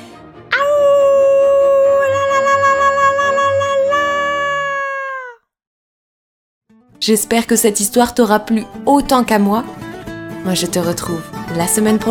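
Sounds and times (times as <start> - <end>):
wolf howling: 0.5 - 5.4
speech: 7.0 - 9.8, 10.4 - 12.0.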